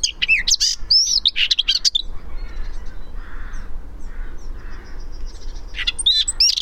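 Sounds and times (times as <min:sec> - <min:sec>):
Eurasian blackcap Sylvia atricapilla singing: 0:00.0 - 0:02.9, 0:05.0 - 0:06.6.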